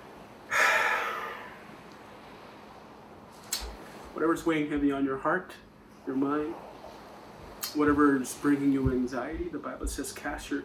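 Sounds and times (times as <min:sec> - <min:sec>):
person exhaling deeply during guided breathing exercise: 0:00.5 - 0:01.8
speech: 0:04.2 - 0:06.7, 0:07.7 - 0:10.6.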